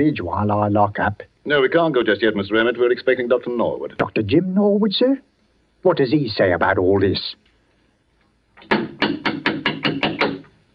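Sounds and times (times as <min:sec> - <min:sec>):
speech: 0:00.0 - 0:07.4
firm knocking on a wooden church vestry door: 0:08.6 - 0:10.5.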